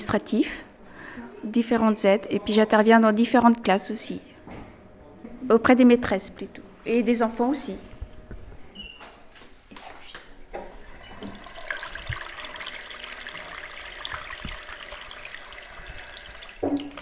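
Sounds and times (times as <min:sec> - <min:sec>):
speech: 0:00.1 - 0:04.3, 0:05.4 - 0:07.9
soft clunks: 0:04.4 - 0:04.9
water pouring steadily from a tap: 0:11.0 - 0:16.9.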